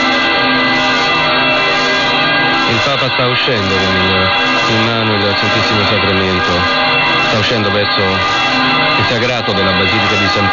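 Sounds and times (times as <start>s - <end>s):
basilica church bells ringing for a solemn blessing: 0.0s - 10.5s
speech: 2.8s - 10.5s.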